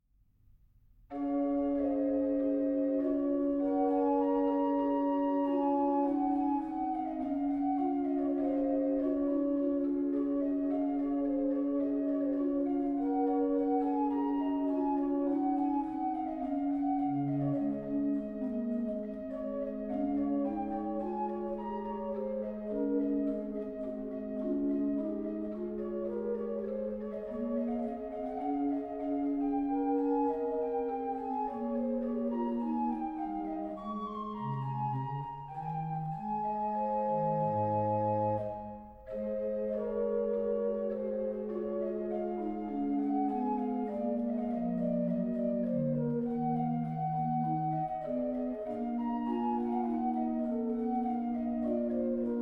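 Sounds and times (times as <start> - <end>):
pastorale played on an organ with tremulant: 1.1 - 52.3.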